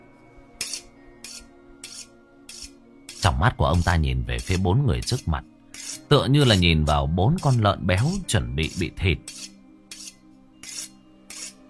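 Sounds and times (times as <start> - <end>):
kitchen knife drawn against a honing steel: 0.6 - 11.6
speech: 3.2 - 9.4.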